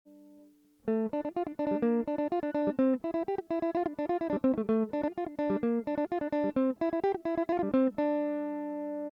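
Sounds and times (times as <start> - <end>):
electric mandolin playing: 0.3 - 9.0.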